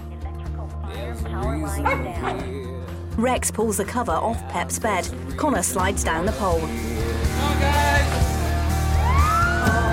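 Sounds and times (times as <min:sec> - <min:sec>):
steady music: 0:00.0 - 0:09.9
speech: 0:01.2 - 0:08.2
dog barking at a sleeping crew: 0:01.8 - 0:02.5.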